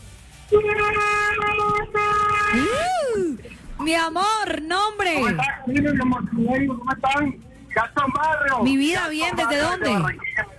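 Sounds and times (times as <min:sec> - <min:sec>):
speech: 0:00.5 - 0:01.1, 0:01.9 - 0:10.5
car horn honking: 0:00.5 - 0:02.8.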